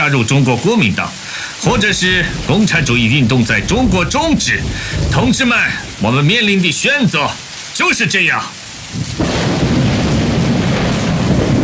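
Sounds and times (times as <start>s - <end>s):
speech: 0.0s - 9.2s
loud thunderclap: 1.3s - 7.6s, 8.7s - 11.6s.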